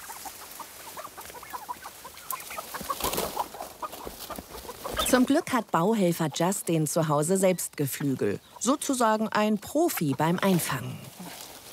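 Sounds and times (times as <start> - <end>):
bushes rustling in a front garden: 0.0 - 11.7
turkeys clucking behind bushes in a front garden: 0.0 - 11.7
speech: 5.1 - 11.1.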